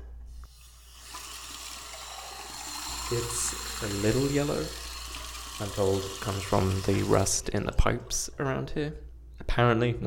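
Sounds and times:
tap water running from a faucet in Los Angeles: 0:00.5 - 0:07.7
speech: 0:03.1 - 0:04.8, 0:05.6 - 0:10.0.

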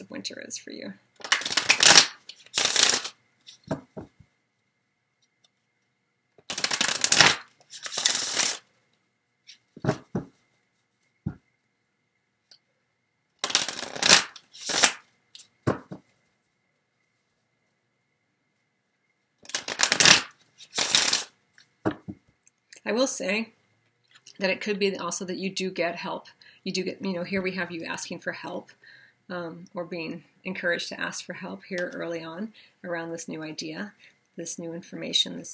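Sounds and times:
speech: 0:00.1 - 0:01.3, 0:22.9 - 0:23.6, 0:24.4 - 0:35.5
tarot cards being shuffled: 0:01.2 - 0:03.8, 0:06.4 - 0:08.6, 0:13.4 - 0:16.0, 0:19.4 - 0:21.3.

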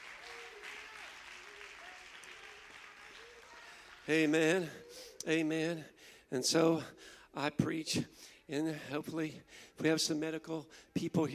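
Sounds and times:
audience clapping: 0:00.0 - 0:04.7
speech: 0:04.1 - 0:11.3.

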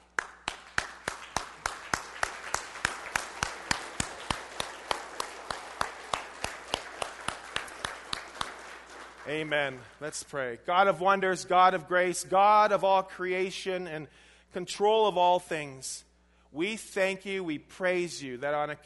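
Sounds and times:
dense wash of scattered applause: 0:00.0 - 0:10.2
crowd clapping in a steady rhythmic beat: 0:00.0 - 0:10.4
speech: 0:09.3 - 0:18.8.

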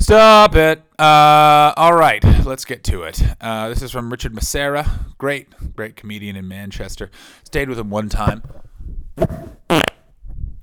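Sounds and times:
speech: 0:00.1 - 0:09.8
loud raspy farts into a microphone: 0:09.2 - 0:10.2.

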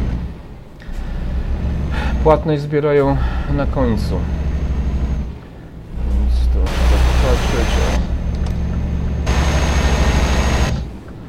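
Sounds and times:
broadband road noise: 0:00.0 - 0:11.2
car engine running: 0:00.0 - 0:11.2
speech: 0:02.2 - 0:04.4.

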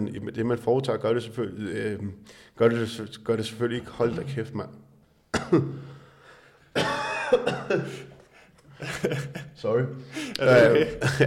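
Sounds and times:
speech: 0:00.0 - 0:04.8, 0:05.5 - 0:05.9, 0:07.4 - 0:08.1, 0:08.8 - 0:11.2
harsh coughing fit from something caught in the throat: 0:05.3 - 0:06.0, 0:06.7 - 0:08.3
laughter: 0:06.8 - 0:11.2.

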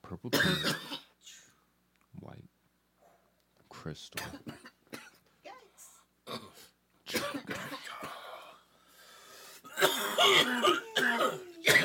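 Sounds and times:
speech: 0:00.1 - 0:00.8, 0:03.9 - 0:04.6, 0:10.2 - 0:10.8
person coughing in harsh raspy bursts: 0:00.3 - 0:01.1, 0:06.3 - 0:08.3, 0:09.7 - 0:11.8.

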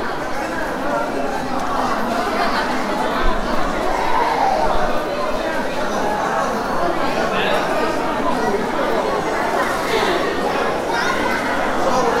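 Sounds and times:
murmur of many overlapping voices in a busy hospital outpatient hall: 0:00.0 - 0:12.1.

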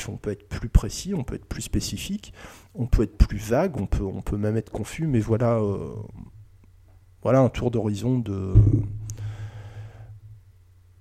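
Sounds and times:
speech: 0:00.0 - 0:06.4, 0:07.2 - 0:09.0
low steady hum: 0:00.0 - 0:11.0
deep breath taken as a breathing exercise: 0:02.3 - 0:02.7, 0:09.0 - 0:10.4.

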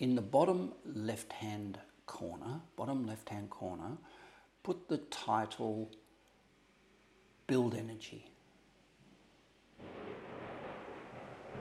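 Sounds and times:
speech: 0:00.0 - 0:06.0, 0:07.5 - 0:08.4
rumble of thunder from a passing storm: 0:09.8 - 0:11.6.

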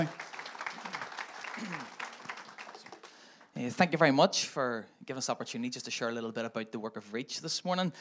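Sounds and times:
speech: 0:00.0 - 0:00.2, 0:01.6 - 0:02.0, 0:03.6 - 0:07.9
audience applause: 0:00.0 - 0:03.5.

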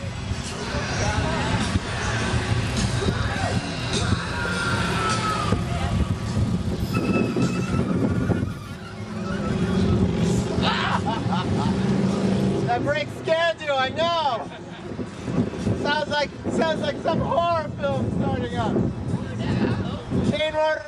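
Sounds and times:
wind and bicycle riding noise: 0:00.0 - 0:20.8
bicycle brake squealing: 0:06.8 - 0:10.1
laughter: 0:07.6 - 0:12.3, 0:14.3 - 0:15.1.

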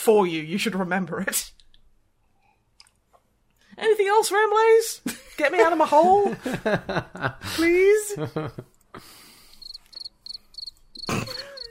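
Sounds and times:
speech: 0:00.0 - 0:01.6, 0:03.8 - 0:09.2
laughter: 0:05.1 - 0:08.8
crickets chirping: 0:09.4 - 0:11.6.

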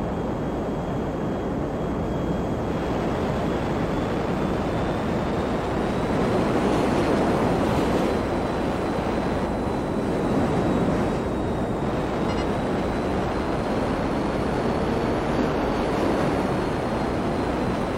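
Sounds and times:
jet engine roar from a fast-flying jet: 0:00.0 - 0:17.9.

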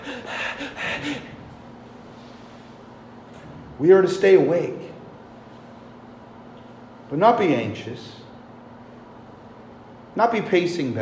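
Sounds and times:
person imitating quick anxious panting: 0:00.0 - 0:01.4
speech: 0:03.8 - 0:04.8, 0:07.1 - 0:08.2, 0:10.2 - 0:11.0.

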